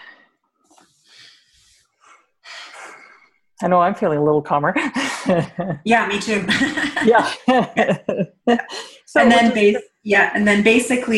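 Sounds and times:
person taking a breath: 0.0 - 3.4, 8.7 - 9.2
speech: 3.6 - 11.1
laughter: 4.8 - 9.8.

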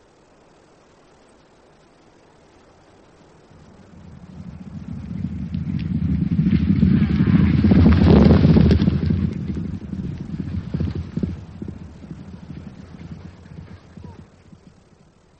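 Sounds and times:
horse hooves clip-clopping during a ride: 3.3 - 15.3.

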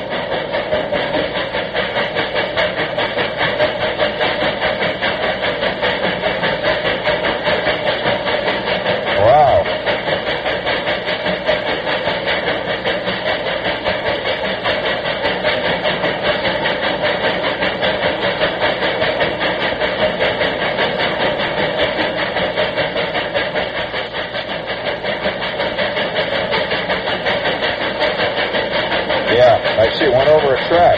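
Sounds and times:
locomotive engine rumbling through a tunnel: 0.0 - 30.9
rhythmic clatter: 0.0 - 30.9.

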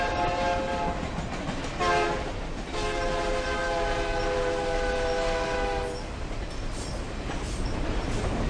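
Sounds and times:
train horn blasts: 0.0 - 1.1, 1.8 - 6.1
train rumbling on rails: 0.0 - 8.4.

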